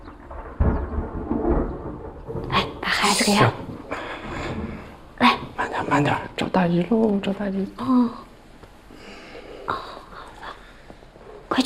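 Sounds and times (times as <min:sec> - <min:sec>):
thunder from a gathering storm: 0:00.0 - 0:08.3
speech: 0:03.0 - 0:03.6, 0:06.0 - 0:08.3.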